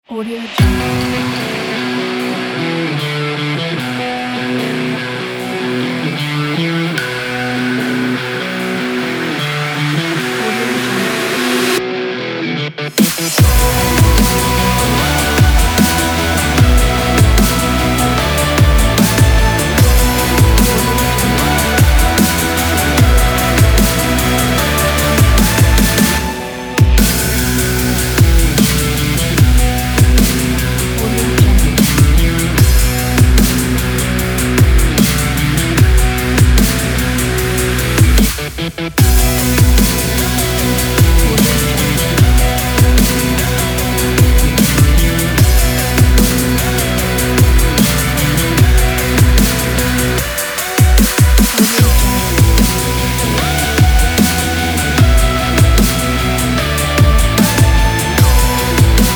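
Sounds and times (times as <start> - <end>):
stylish rock dubstep music: 0.0 - 59.1.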